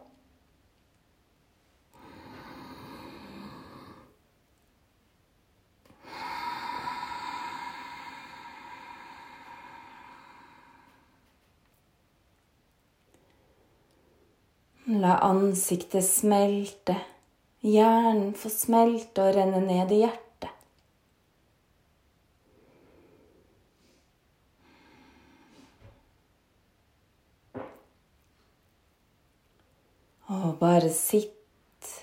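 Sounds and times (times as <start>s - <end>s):
slow audible breathing: 1.9s - 4.3s, 5.9s - 11.6s, 22.4s - 26.3s
speech: 14.9s - 20.5s.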